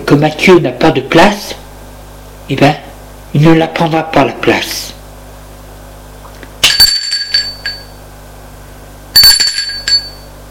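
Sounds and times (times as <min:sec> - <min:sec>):
speech: 0:00.1 - 0:01.6, 0:02.5 - 0:05.0
doorbell ringing with bright metallic chiming strikes: 0:06.6 - 0:08.0, 0:09.2 - 0:10.4.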